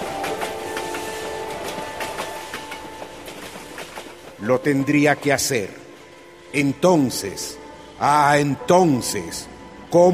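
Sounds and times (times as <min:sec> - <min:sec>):
steam locomotive train wheels clacking over rail joints: 0:00.0 - 0:05.3
speech: 0:04.4 - 0:05.8, 0:06.5 - 0:10.1.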